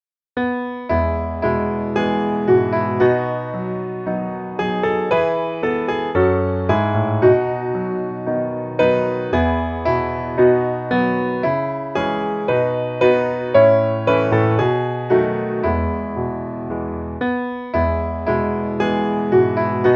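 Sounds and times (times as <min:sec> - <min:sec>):
piano piece: 0:00.4 - 0:19.9.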